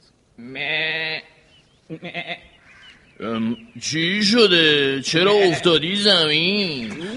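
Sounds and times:
speech: 0.4s - 0.9s, 1.9s - 2.5s, 3.2s - 7.1s
sheep bleating: 0.4s - 2.5s.

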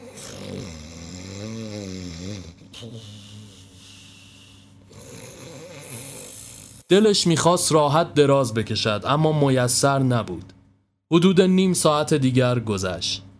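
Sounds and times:
man snoring in sleep: 0.0s - 6.9s
speech: 6.9s - 10.5s, 11.1s - 13.3s.

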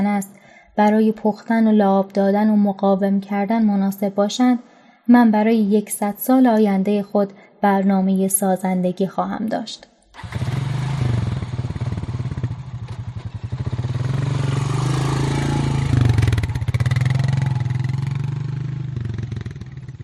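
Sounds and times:
speech: 0.2s - 10.5s
motorcycle engine starting, idling, revving and pulling away: 10.1s - 20.0s.

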